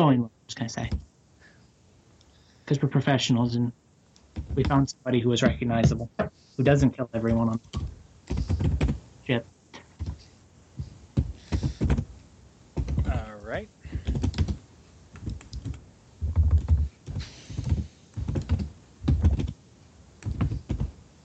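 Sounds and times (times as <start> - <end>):
speech: 0.0 - 1.1, 2.7 - 3.8, 4.4 - 9.5, 13.5 - 13.8
rapid frantic typing on a computer keyboard: 4.3 - 4.9, 7.6 - 9.0, 9.9 - 10.2, 11.2 - 12.1, 12.8 - 13.2, 13.9 - 19.6, 20.2 - 20.9.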